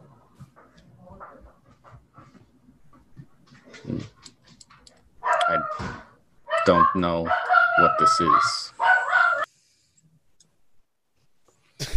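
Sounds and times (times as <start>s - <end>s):
dog barking: 5.2s - 9.5s
speech: 6.9s - 8.8s.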